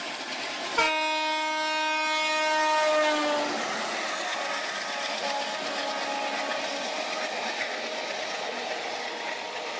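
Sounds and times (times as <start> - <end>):
train rolling by with steady rumble and rattle: 0.0 - 9.7
Indian train horn blasting: 0.8 - 7.2.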